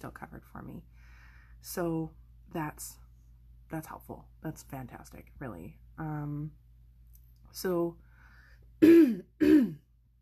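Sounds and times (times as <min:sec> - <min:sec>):
speech: 0:00.0 - 0:03.0, 0:03.7 - 0:06.6, 0:07.5 - 0:08.0, 0:08.8 - 0:09.8
person clearing throat: 0:08.8 - 0:09.8.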